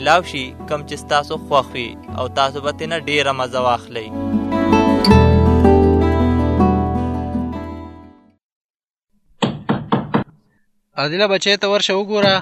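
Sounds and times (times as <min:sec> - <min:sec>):
speech: 0:00.0 - 0:04.3, 0:11.0 - 0:12.4
sustained musical chord: 0:04.0 - 0:07.4
knocking on a door: 0:09.4 - 0:10.4.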